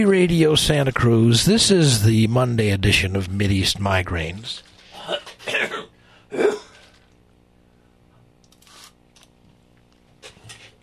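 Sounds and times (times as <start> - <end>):
speech: 0.0 - 4.7
man coughing and clearing his throat in a radio studio: 4.9 - 6.9.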